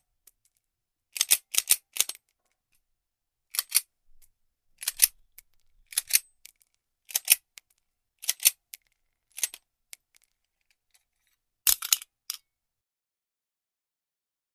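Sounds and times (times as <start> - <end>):
9mm Baretta pistol handling foley: 1.2 - 2.2, 3.5 - 6.3, 7.1 - 7.4, 8.2 - 8.6, 11.7 - 12.4.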